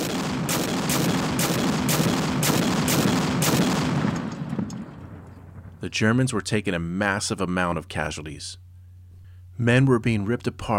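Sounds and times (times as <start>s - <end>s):
French 75 field artillery guns firing on German lines: 0.0s - 5.8s
speech: 5.8s - 8.6s, 9.6s - 10.7s.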